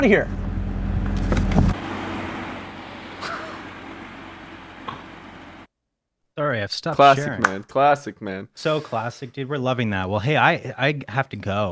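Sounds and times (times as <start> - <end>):
speech: 0.0 - 0.4, 6.4 - 11.7
Corvette Stingray sports car engine rumbling: 0.0 - 5.7.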